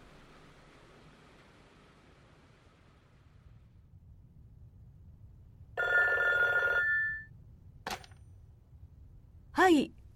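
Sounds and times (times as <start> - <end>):
telephone bell ringing in a loud sustained trill: 5.8 - 7.3.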